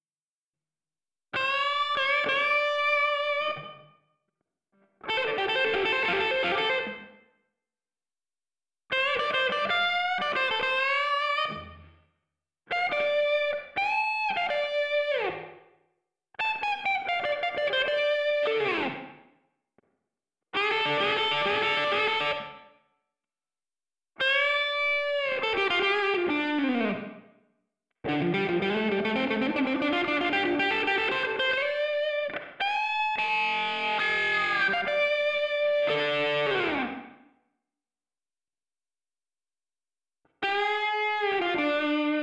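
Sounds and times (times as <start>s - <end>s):
isolated alternative lead guitar: 1.4s - 3.9s, 4.8s - 7.2s, 8.9s - 12.0s, 12.7s - 15.6s, 16.4s - 19.3s, 20.6s - 22.8s, 24.2s - 27.3s, 28.0s - 37.3s, 40.4s - 42.2s.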